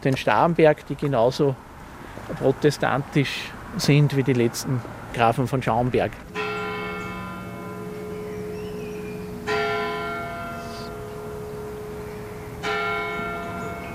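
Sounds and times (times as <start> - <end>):
speech: 0.0 - 1.7, 2.3 - 6.4
church bells ringing eleven o'clock: 6.3 - 13.9.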